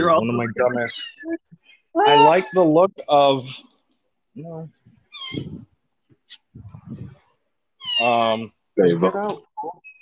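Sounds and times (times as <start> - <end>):
speech: 0.0 - 1.4, 2.0 - 3.7, 4.4 - 5.7, 8.0 - 9.8
cat meowing: 2.1 - 2.6.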